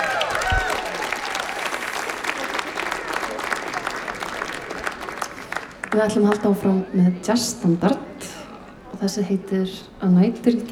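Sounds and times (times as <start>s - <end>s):
audience applause at a live jazz concert: 0.0s - 6.9s
speech: 5.9s - 8.1s, 9.0s - 10.7s.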